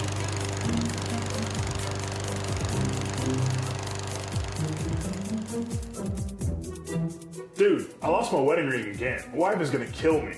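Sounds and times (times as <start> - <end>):
small gas self-propelled lawnmower running while mowing grass: 0.0 - 6.4
speech: 7.6 - 10.3.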